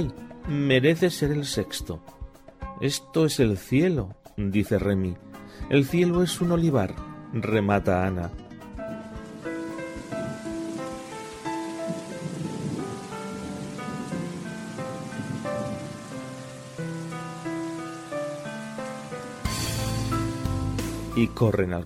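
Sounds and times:
speech: 0:00.0 - 0:02.2, 0:02.8 - 0:08.4, 0:21.2 - 0:21.8
soft melodic music with sustained tones: 0:00.0 - 0:21.8
rain falling: 0:08.8 - 0:21.6.

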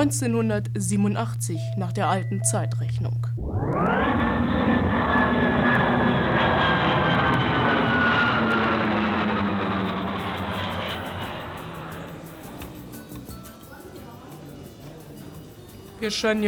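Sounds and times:
speech: 0:00.0 - 0:04.3, 0:16.0 - 0:16.4
faint descending whine: 0:01.8 - 0:13.6
sci-fi time beam powering up aboard a spaceship: 0:03.4 - 0:13.0.

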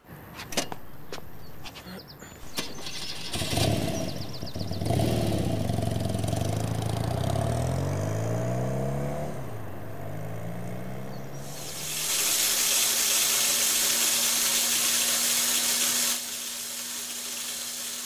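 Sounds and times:
sharp clicks and knocks: 0:00.4 - 0:01.8
moped engine starting, idling and revving as it rides off: 0:02.4 - 0:18.0.

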